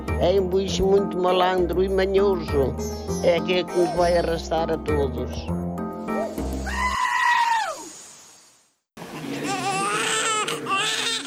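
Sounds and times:
speech: 0.2s - 5.6s
newborn baby's first cry: 2.9s - 4.4s, 6.6s - 7.8s, 9.4s - 11.2s.

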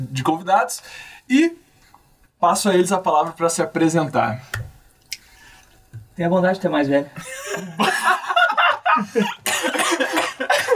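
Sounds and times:
speech: 0.0s - 1.6s, 2.4s - 4.7s, 6.2s - 7.9s, 9.2s - 9.8s
person chuckling: 7.2s - 10.7s
person coughing: 9.2s - 10.7s.

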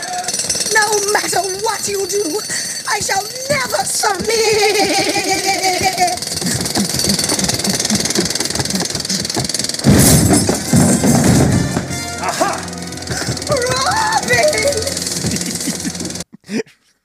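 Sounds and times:
jackhammer rattling: 0.0s - 16.2s
speech: 0.8s - 6.2s
laughter: 4.3s - 9.7s, 12.2s - 16.3s.

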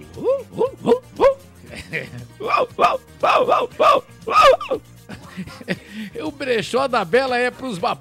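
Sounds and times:
person imitating a dog barking: 0.0s - 1.5s, 2.4s - 4.8s
laughter: 1.7s - 2.6s, 4.3s - 6.1s
speech: 1.9s - 4.0s, 6.5s - 8.0s.

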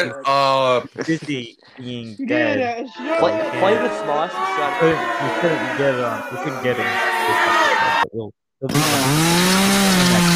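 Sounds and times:
speech: 0.0s - 10.3s
sluggish chainsaw droning and revving: 8.7s - 10.3s.

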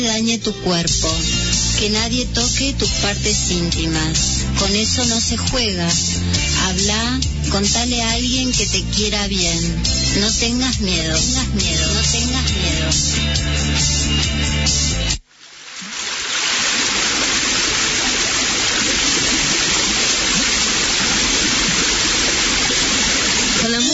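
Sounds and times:
brief burst of music: 0.0s - 15.2s
speech: 0.0s - 15.2s
flowing river current: 15.6s - 23.7s.

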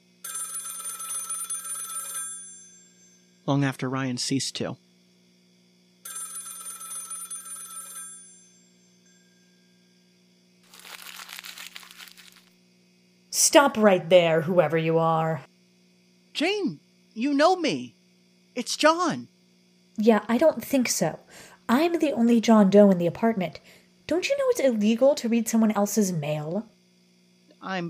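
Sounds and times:
faint hum: 0.0s - 27.8s
rattling telephone bell ringing: 0.2s - 3.3s, 6.0s - 9.6s
speech: 3.4s - 4.8s, 13.5s - 15.5s, 16.4s - 18.0s, 18.6s - 19.3s, 20.0s - 26.7s, 27.6s - 27.8s
crinkling rustling noise: 10.6s - 12.6s.

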